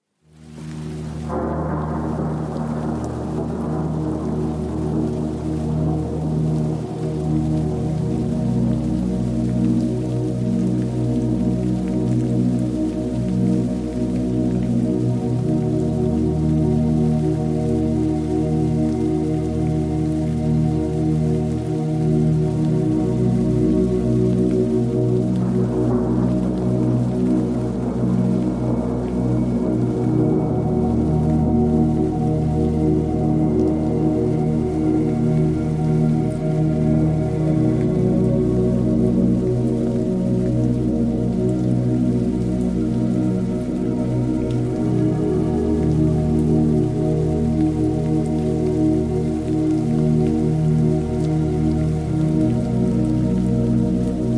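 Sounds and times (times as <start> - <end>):
delta wave deep sleep music: 0.6 - 54.3
thunder: 1.0 - 6.8.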